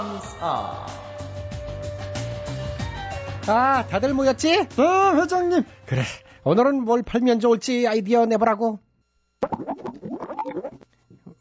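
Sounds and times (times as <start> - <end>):
speech: 0.0 - 1.3, 3.4 - 8.8
cartoonish gurgling stomach rumble sound effect from a man's upset stomach after spicy ramen: 9.4 - 11.3.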